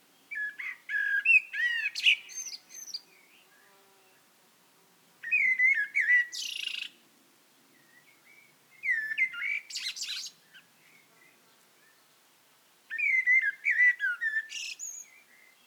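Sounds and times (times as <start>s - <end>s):
Eurasian blackbird Turdus merula singing: 0.3s - 3.3s, 5.2s - 7.0s, 7.9s - 10.7s, 12.9s - 15.6s.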